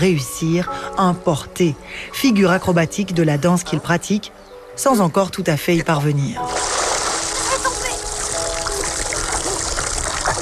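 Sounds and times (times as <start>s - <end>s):
speech: 0.0s - 6.8s
water splashing and churning in a lake: 6.4s - 10.3s.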